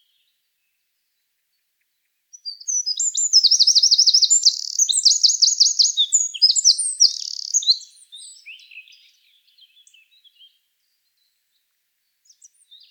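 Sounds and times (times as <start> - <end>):
Eurasian wren Troglodytes troglodytes singing: 2.3 - 9.2.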